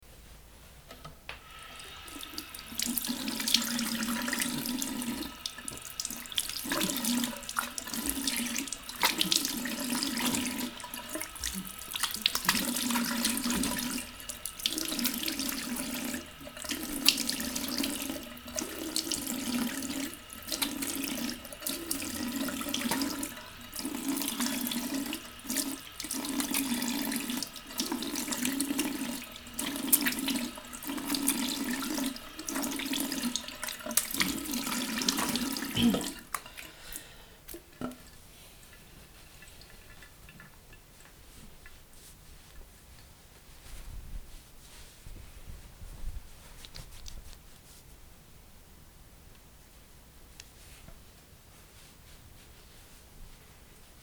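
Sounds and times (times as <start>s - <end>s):
washing face: 1.4s - 42.4s
drying face: 1.4s - 48.2s, 49.6s - 54.0s.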